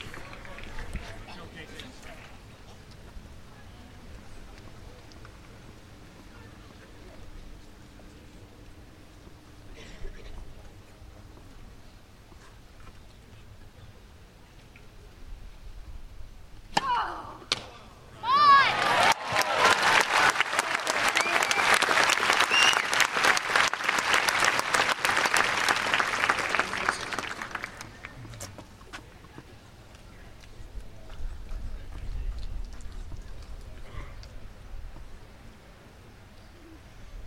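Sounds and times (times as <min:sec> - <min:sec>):
dense bright crowd applause at a tennis court: 0:00.0 - 0:01.6, 0:18.2 - 0:28.5
quiet crowd murmuring at a tennis court: 0:00.0 - 0:11.3, 0:17.2 - 0:37.2.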